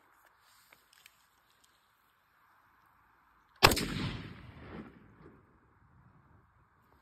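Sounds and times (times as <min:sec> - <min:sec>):
M4 carbine gunfire: 0:03.6 - 0:05.3.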